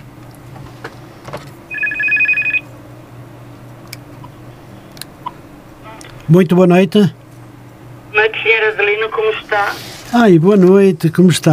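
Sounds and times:
low steady hum: 0.0s - 11.5s
telephone ringing with bright electronic trill: 1.7s - 2.7s
speech: 6.3s - 7.2s, 9.6s - 11.5s.

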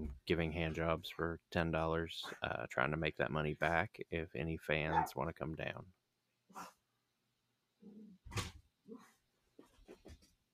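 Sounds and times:
speech: 0.3s - 6.8s
dogs barking in short sharp yaps and huffs: 4.9s - 5.2s.

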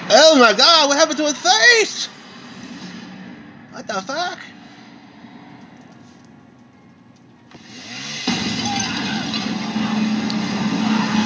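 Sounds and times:
speech: 0.1s - 2.2s, 3.8s - 4.6s
chainsaw running: 7.5s - 11.2s.

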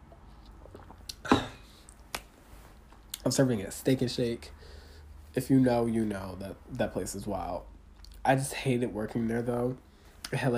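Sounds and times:
person sipping water: 0.1s - 2.1s
speech: 3.3s - 10.5s.

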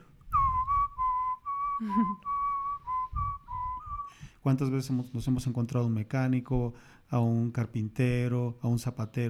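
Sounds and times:
person whistling a tune: 0.3s - 4.3s
speech: 1.8s - 2.3s, 4.4s - 9.2s
breaths between whistled phrases: 4.0s - 4.5s, 6.7s - 7.1s.

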